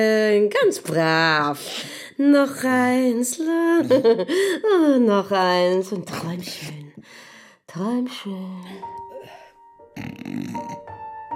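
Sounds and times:
speech: 0:00.0 - 0:09.0
voice imitating the loud snoring of a woman: 0:10.0 - 0:10.9.

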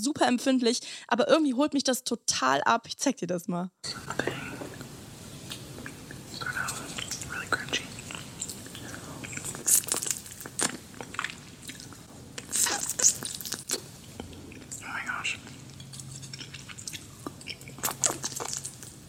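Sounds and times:
speech: 0:00.0 - 0:04.5
wet mouth sounds: 0:03.9 - 0:18.9
crunching and chewing of crispy chicken skin: 0:09.3 - 0:13.9, 0:15.9 - 0:19.0.

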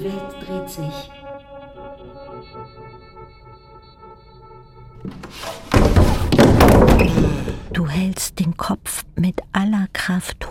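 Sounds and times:
speech: 0:00.0 - 0:01.2, 0:07.8 - 0:10.4
hands pounding heavily on a floor: 0:05.1 - 0:07.6.

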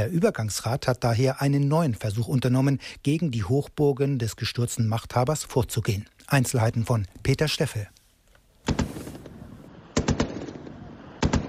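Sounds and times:
speech: 0:00.0 - 0:08.0
automatic gunfire as fighters test-fire their weapons in the desert near Bani Walid: 0:10.0 - 0:10.6.

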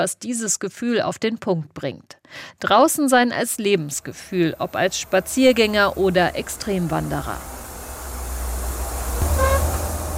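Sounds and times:
speech: 0:00.0 - 0:07.6
train travelling through landscape near the Arctic Circle: 0:03.3 - 0:10.1
short tonal hum: 0:04.0 - 0:10.1.

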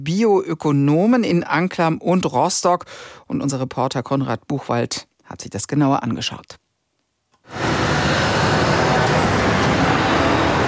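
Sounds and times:
speech: 0:00.0 - 0:06.6
heavy road traffic of trucks driving to a sugar factory in Anklam: 0:07.5 - 0:10.6.

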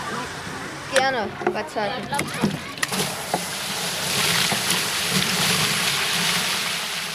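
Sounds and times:
speech: 0:01.0 - 0:02.7
watering can filling in a water barrel: 0:02.2 - 0:07.1.

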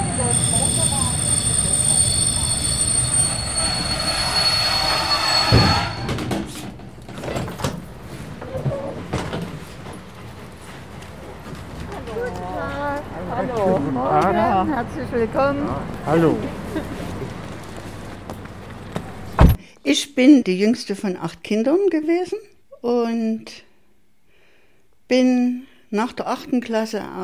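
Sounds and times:
high metallic train wheel squeal: 0:00.0 - 0:06.6
train clatter: 0:00.0 - 0:13.6
train rumbling into Chemnitz Hauptbahnhof in Germany: 0:00.0 - 0:19.4
speech: 0:15.0 - 0:16.6, 0:20.1 - 0:23.7, 0:25.1 - 0:27.2.

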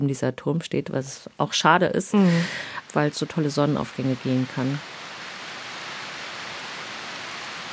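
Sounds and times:
speech: 0:00.0 - 0:05.0
dense rainfall in a rainforest on foliage: 0:02.1 - 0:07.7.

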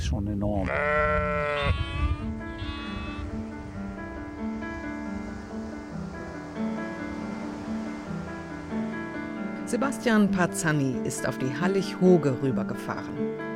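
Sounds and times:
speech: 0:00.1 - 0:02.4, 0:09.7 - 0:13.4
goat giving a short wavering bleat: 0:00.6 - 0:03.3
wash of wind or surf: 0:02.2 - 0:12.1
steady sustained tones: 0:03.2 - 0:11.4.

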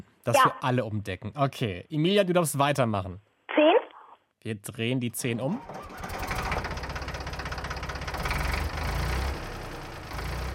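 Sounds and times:
speech: 0:00.2 - 0:03.7, 0:04.4 - 0:06.1
tractor diesel engine running: 0:05.6 - 0:10.5.

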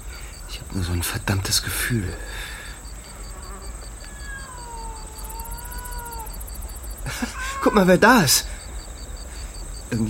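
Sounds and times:
faint rhythmic ticking: 0:00.0 - 0:10.0
hiss: 0:00.0 - 0:10.0
speech: 0:00.5 - 0:02.6, 0:07.2 - 0:08.6
cat meowing: 0:03.9 - 0:06.5, 0:07.2 - 0:08.1
laughter: 0:07.0 - 0:08.4.

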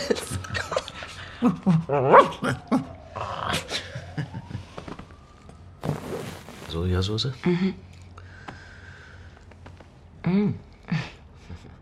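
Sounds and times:
speech: 0:00.1 - 0:00.8, 0:01.4 - 0:03.8, 0:06.8 - 0:07.9, 0:10.3 - 0:10.7
puppy barking: 0:02.0 - 0:02.4.

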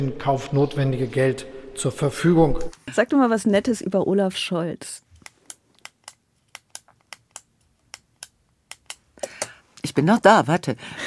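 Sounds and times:
speech: 0:00.0 - 0:05.0, 0:10.0 - 0:11.0
ballpoint pen clicking: 0:05.2 - 0:09.6.

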